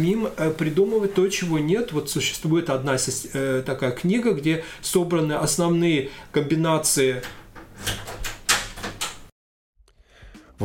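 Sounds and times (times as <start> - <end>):
speech: 0.0 - 8.0
door opening with rattling clicks, scrapes and quick knocks: 7.2 - 9.3.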